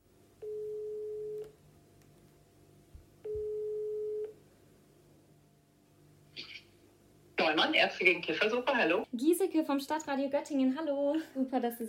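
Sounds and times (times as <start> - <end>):
ringback tone of an outgoing telephone call: 0.4 - 1.5, 3.3 - 4.3
speech: 7.6 - 11.8.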